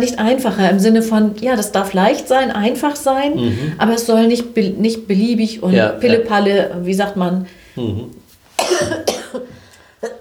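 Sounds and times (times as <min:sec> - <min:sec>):
speech: 0:00.0 - 0:08.2, 0:08.8 - 0:10.1
person coughing in loud harsh bursts: 0:03.4 - 0:03.8, 0:08.6 - 0:10.2.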